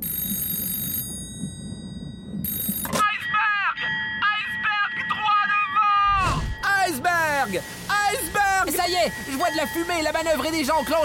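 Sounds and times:
warning bell rung in a crow's nest to raise the alarm: 0.0 - 11.0
low rumble: 6.1 - 6.7
speech: 9.0 - 11.0.

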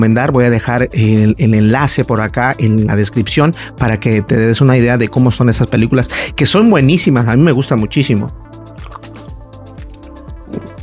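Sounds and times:
speech: 0.0 - 8.4
person drinking water in steady gulps: 8.6 - 10.8
liquid sloshing: 8.7 - 9.3.

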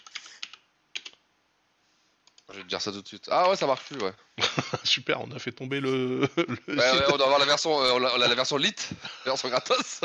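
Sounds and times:
typing on a computer keyboard: 0.0 - 1.2
speech: 2.5 - 10.0
laughter: 4.4 - 4.9, 5.9 - 7.4, 8.0 - 10.0.

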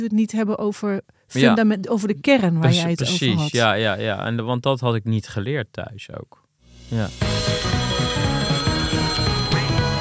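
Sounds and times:
speech: 0.0 - 7.7
telephone ringing for an incoming caller: 7.4 - 9.9.

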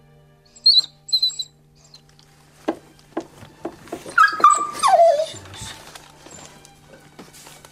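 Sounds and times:
dog whimpering while giving birth to puppies: 0.6 - 2.1, 3.9 - 6.5
faint shuffling: 2.2 - 7.7.

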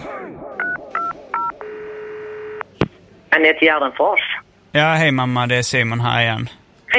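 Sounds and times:
steady telephone tone: 0.6 - 2.7
speech: 3.3 - 6.9.

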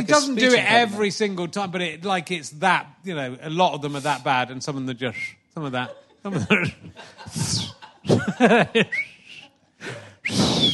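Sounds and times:
speech: 0.0 - 9.1
laughter: 5.6 - 10.2
person whistling: 8.9 - 9.5, 10.2 - 10.7.

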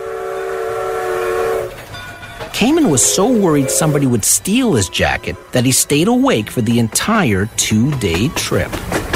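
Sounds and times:
train horn blaring: 0.0 - 1.8, 2.6 - 5.6
speech: 2.6 - 9.0.

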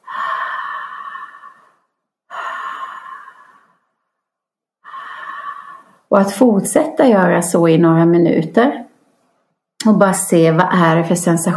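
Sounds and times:
slow deep circular breathing through an open mouth: 0.0 - 4.0, 4.8 - 6.1
speech: 6.1 - 8.8, 9.8 - 11.5.

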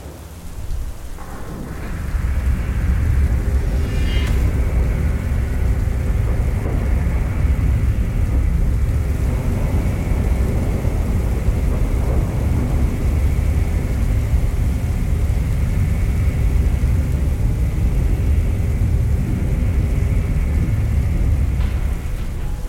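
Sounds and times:
loud continuous thunder rolling: 0.0 - 22.6
steady heavy rain: 0.0 - 22.6
massive metal gate grinding open with a metallic whine: 3.6 - 5.0.

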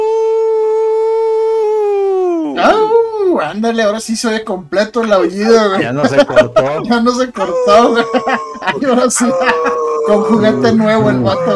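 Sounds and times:
person imitating a wolf howl: 0.0 - 3.3, 7.4 - 11.5
speech: 3.5 - 11.5
laughter: 5.4 - 11.5.

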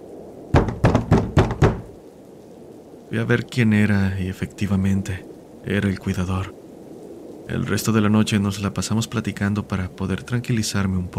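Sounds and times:
firm knocking on a door: 0.6 - 1.9
speech: 3.1 - 6.6, 7.5 - 11.1.

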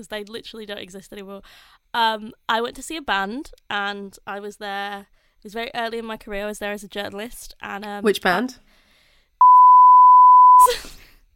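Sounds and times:
speech: 0.0 - 8.7
loud steady high-pitched censor bleep: 9.4 - 10.7.

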